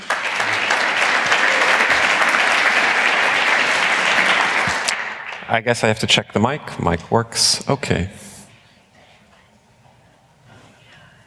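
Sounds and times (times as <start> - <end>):
sizable audience clapping: 0.0 - 6.6
speech: 5.5 - 8.2.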